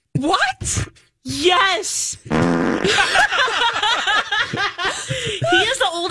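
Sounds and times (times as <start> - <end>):
speech: 0.2 - 3.8
loud buzzy fart sound effect: 2.3 - 3.0
laughter: 2.8 - 5.8.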